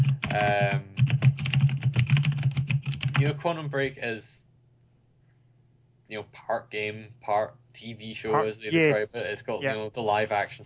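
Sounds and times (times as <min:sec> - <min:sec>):
loud rapid typing on a computer keyboard: 0:00.0 - 0:03.3
speech: 0:00.3 - 0:00.7, 0:03.2 - 0:04.4, 0:06.1 - 0:10.6.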